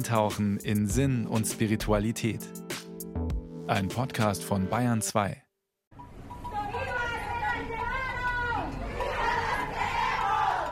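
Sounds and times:
speech: 0.0 - 2.6, 3.7 - 5.4
street protest crowd shouting and chanting: 6.6 - 10.7.

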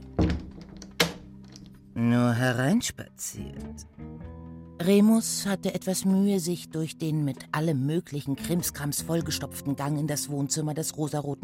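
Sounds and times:
solid wooden clunks of a door being opened: 0.0 - 1.7
speech: 2.0 - 11.4.

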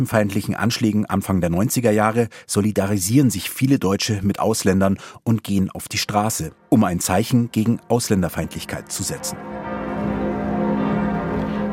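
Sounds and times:
speech: 0.0 - 9.7
church bells ringing: 6.5 - 11.7.

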